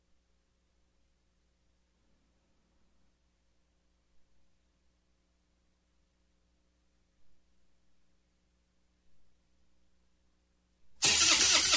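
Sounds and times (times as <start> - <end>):
truck engine cranking and failing to start: 11.0 - 11.7.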